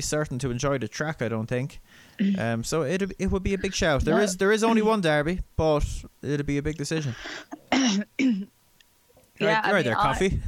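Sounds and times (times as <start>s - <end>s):
speech: 0.0s - 8.6s, 9.4s - 10.4s
person coughing: 7.2s - 8.5s.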